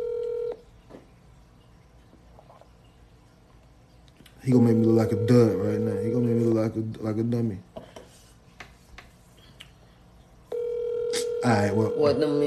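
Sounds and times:
telephone ringback tones: 0.0s - 0.6s, 4.5s - 6.6s, 10.5s - 12.4s
man talking quietly over a phone line: 4.4s - 7.6s, 11.0s - 12.4s
speech: 4.4s - 7.7s, 11.4s - 12.4s.

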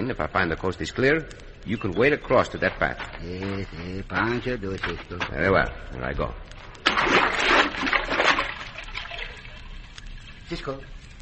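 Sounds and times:
speech: 0.1s - 8.1s, 10.5s - 11.0s
water sloshing and bubbling from underwater swimming: 4.1s - 11.1s
splash of a man diving into water: 6.8s - 9.6s.

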